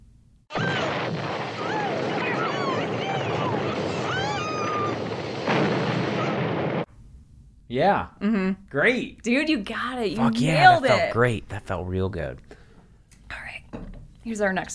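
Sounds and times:
whistling shrieking tones over the blast: 0.5s - 5.2s
gas station explosion roaring rumble: 0.5s - 6.9s
speech: 7.7s - 12.6s, 13.7s - 14.7s.

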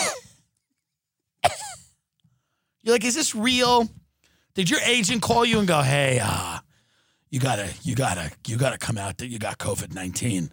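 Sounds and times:
small coughs: 0.0s - 0.5s, 1.4s - 2.0s
speech: 2.8s - 4.0s, 4.6s - 6.6s, 7.3s - 10.5s.

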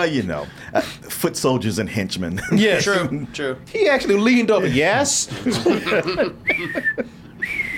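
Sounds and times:
speech: 0.0s - 7.6s
laughter: 2.4s - 3.3s, 4.6s - 7.2s
person whistling a birdlike call: 6.5s - 7.7s.

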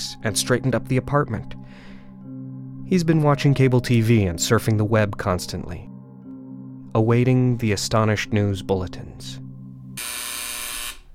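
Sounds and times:
speech: 0.2s - 1.8s, 2.9s - 5.9s, 6.9s - 9.4s
harsh electric front door buzzer of an apartment: 10.0s - 11.1s.

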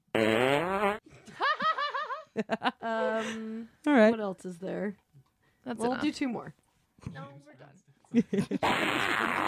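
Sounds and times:
buzzy fart sound effect played from a website: 0.1s - 1.0s, 8.6s - 9.4s
person laughing in breathy bursts: 1.3s - 3.5s, 8.2s - 9.3s
speech: 2.4s - 5.0s, 5.6s - 9.4s.

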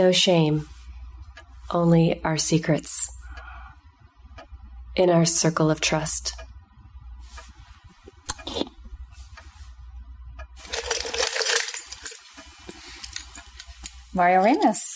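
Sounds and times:
speech: 0.0s - 0.7s, 1.7s - 3.2s, 5.0s - 6.5s, 14.2s - 14.9s
keys clinking and jangling in a punch bowl: 10.6s - 14.8s.

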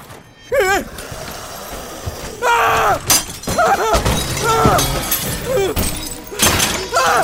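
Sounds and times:
strained vocal groans or cries: 0.5s - 6.0s
glass shattering: 2.4s - 7.2s.

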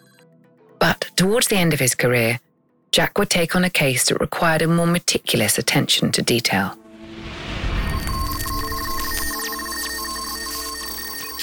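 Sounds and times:
speech: 1.2s - 6.8s
electronic telephone ringtone for an incoming phone call: 7.8s - 11.4s.

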